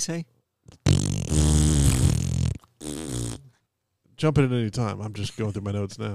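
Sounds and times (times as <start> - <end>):
speech: 0.0 - 1.6, 4.2 - 6.1
man blowing buzzing raspberry fart noises with his mouth: 0.7 - 3.6.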